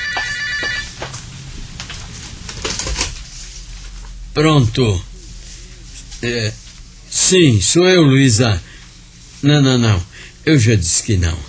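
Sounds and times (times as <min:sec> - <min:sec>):
telephone ringing with a trilling electronic tone: 0:00.0 - 0:01.0
low hum: 0:00.0 - 0:11.4
speech: 0:04.4 - 0:05.1, 0:06.2 - 0:08.7, 0:09.4 - 0:11.4.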